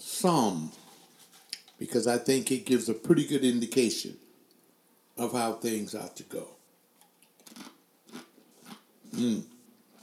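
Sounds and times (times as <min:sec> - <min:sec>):
speech: 0:00.0 - 0:00.8, 0:01.8 - 0:04.2, 0:05.2 - 0:06.6, 0:09.2 - 0:09.5
loud crunchy chewing of food: 0:07.0 - 0:10.0.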